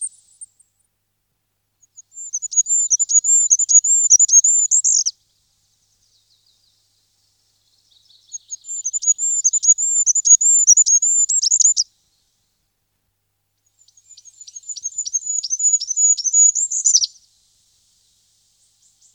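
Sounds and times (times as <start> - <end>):
goldcrest singing: 1.8 - 5.2, 5.9 - 12.2, 13.6 - 19.1.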